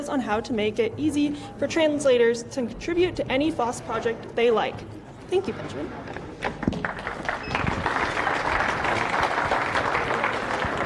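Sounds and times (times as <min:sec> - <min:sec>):
speech: 0:00.0 - 0:06.6
large audience at a talk applauding: 0:06.6 - 0:10.8.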